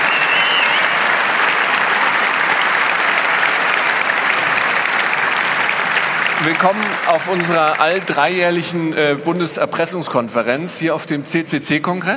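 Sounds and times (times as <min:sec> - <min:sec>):
large audience applause: 0:00.0 - 0:09.8
speech: 0:06.4 - 0:12.1.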